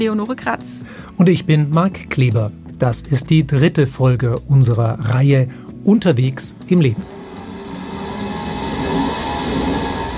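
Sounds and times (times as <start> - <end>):
speech: 0.0 - 7.2
S-Bahn commuter train running on rails heard from inside a carriage: 6.7 - 10.1
faint tonal hum: 6.7 - 10.1.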